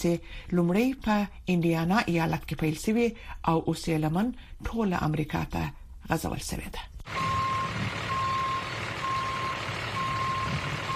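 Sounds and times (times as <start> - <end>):
speech: 0.0 - 8.0
constant low truck engine rumble: 7.0 - 10.9
backup beeps from a truck or tractor-trailer reversing to park on a street: 7.1 - 10.9.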